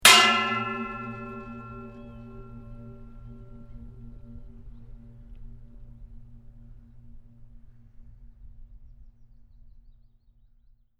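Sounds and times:
gong-like resonating metal pipe impact with long ring: 0:00.0 - 0:07.5.

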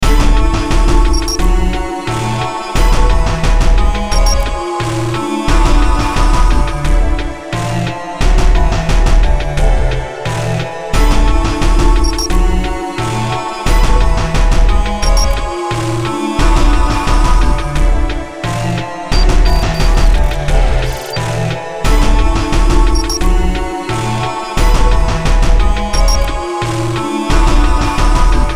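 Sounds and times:
choir beat loop: 0:00.1 - 0:28.5
electrical glitch synth: 0:19.2 - 0:21.2.

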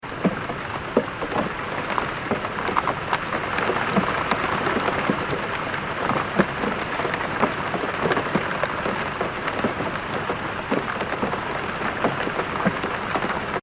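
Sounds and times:
medium rain hitting a window recorded from inside: 0:00.0 - 0:13.6
water drips on a window: 0:00.2 - 0:09.9.

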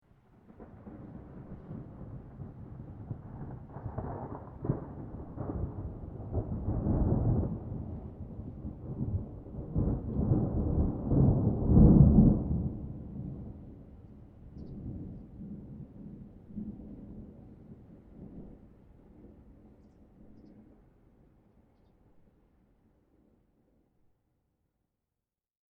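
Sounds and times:
distant thunder rumble with rolling thunder claps: 0:00.4 - 0:20.6.

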